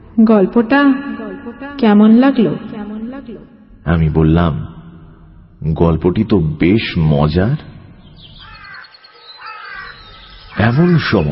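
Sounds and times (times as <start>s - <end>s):
speech: 0.2s - 1.1s, 1.7s - 2.7s, 3.8s - 4.7s, 5.6s - 7.7s, 10.6s - 11.3s
crow cawing: 8.2s - 11.3s.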